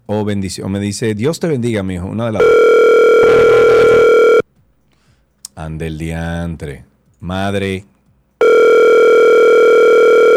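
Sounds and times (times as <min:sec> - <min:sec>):
speech: 0:00.1 - 0:03.4, 0:05.6 - 0:07.9
electronic ringback tone from an outgoing phone call: 0:02.4 - 0:04.4, 0:08.4 - 0:10.3.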